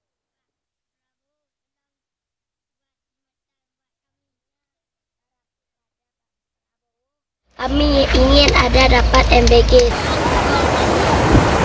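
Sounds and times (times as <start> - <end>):
speech: 7.6 - 10.1
fast-flowing river of brownish water rushing in Pantai Cermen district Aceh Barat Indonesia: 7.6 - 11.6.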